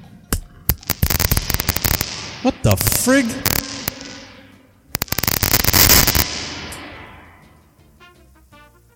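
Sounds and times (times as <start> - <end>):
sharp crackling and popping from a faulty reverb unit: 0.4 - 7.3
speech: 2.4 - 3.6.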